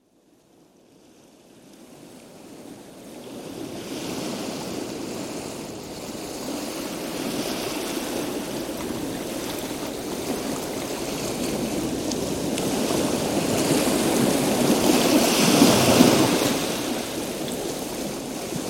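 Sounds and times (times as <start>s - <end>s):
calm sea: 0.0s - 18.6s.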